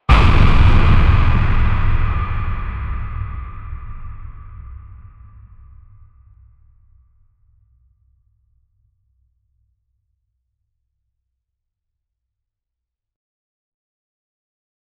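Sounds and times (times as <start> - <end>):
deep cinematic trailer sound effect: 0.1 - 5.9.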